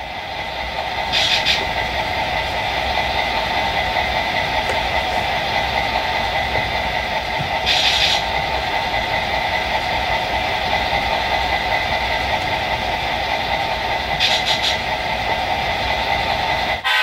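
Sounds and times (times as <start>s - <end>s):
freight train locomotive engine idling: 0.0s - 16.8s.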